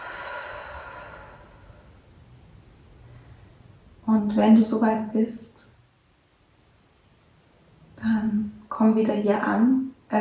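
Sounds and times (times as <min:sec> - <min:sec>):
deep breath in and out: 0:00.0 - 0:02.1
speech: 0:04.1 - 0:05.5, 0:08.8 - 0:10.2.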